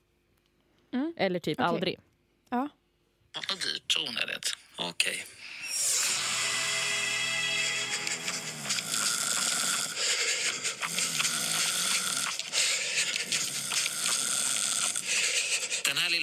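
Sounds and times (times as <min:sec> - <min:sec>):
speech: 0:00.9 - 0:02.8, 0:04.0 - 0:05.4, 0:15.9 - 0:16.2
loud snoring: 0:05.7 - 0:15.9
heavy rhythmic panting breaths: 0:07.5 - 0:15.9.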